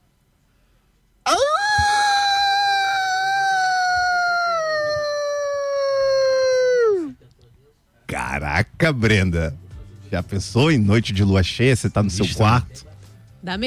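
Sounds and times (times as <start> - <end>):
person imitating a wolf howl: 1.3 - 7.2
speech: 8.8 - 13.6.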